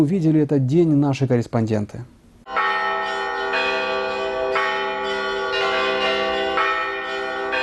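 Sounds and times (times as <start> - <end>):
speech: 0.0 - 2.2
church bells of a church in Rostov-on-Don Russia ringing a peal: 2.5 - 7.6.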